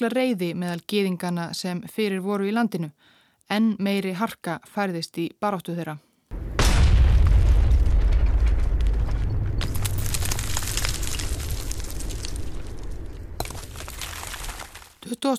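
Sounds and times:
speech: 0.0s - 6.1s, 15.1s - 15.3s
faint thud: 6.3s - 11.4s
loud bomb blast with heavy low boom and long rumbling roar: 6.3s - 14.4s
crackling debris from bomb explosion: 6.3s - 15.1s.

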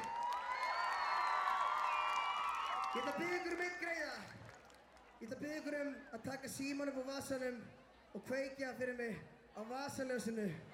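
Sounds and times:
large concert crowd cheering and whooping: 0.0s - 3.8s
concert crowd applause: 0.0s - 5.2s
speech: 3.0s - 4.5s, 5.2s - 10.7s.

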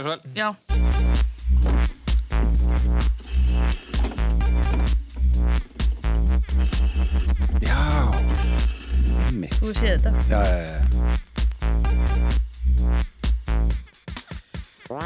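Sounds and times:
speech: 0.0s - 2.0s, 2.8s - 4.2s, 6.5s - 11.2s
1999 French electronic dance track with buzzing bass line and punchy beats: 2.3s - 13.9s.

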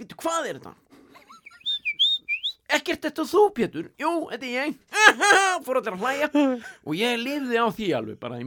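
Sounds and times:
speech: 0.0s - 0.9s, 2.7s - 8.4s
person whistling imitating a small songbird: 1.4s - 2.7s
laughter: 5.0s - 5.6s.

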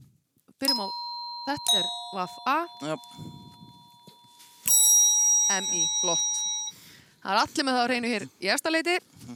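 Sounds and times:
speech: 0.6s - 3.4s, 5.5s - 6.4s, 7.2s - 9.3s
quiz team's metallic buzzer bell ding: 0.7s - 7.0s.

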